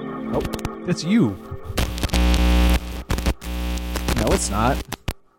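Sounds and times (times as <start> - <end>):
loud harsh static crackling and buzzing: 0.3 - 0.8, 1.6 - 5.2
speech: 0.9 - 1.5, 4.4 - 4.9
low hum: 1.8 - 4.9.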